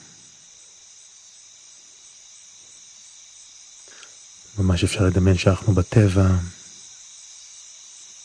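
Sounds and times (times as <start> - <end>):
crickets chirping: 0.0 - 8.2
speech: 4.6 - 6.6.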